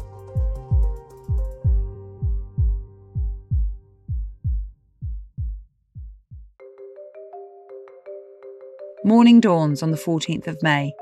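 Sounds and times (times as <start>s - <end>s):
loud deep heartbeat thumping: 0.0s - 6.6s
bright electronic phone ringtone: 6.6s - 11.0s
speech: 9.0s - 11.0s.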